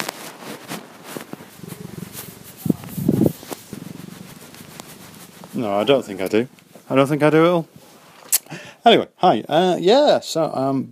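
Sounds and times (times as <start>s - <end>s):
faint rustling: 0.0s - 9.0s
cat purring: 0.4s - 8.2s
speech: 5.6s - 7.7s, 8.8s - 10.9s.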